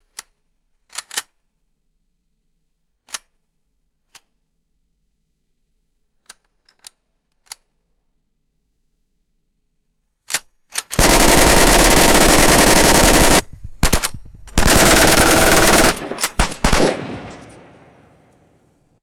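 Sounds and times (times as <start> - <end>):
machine gun cocking: 10.8 - 18.4.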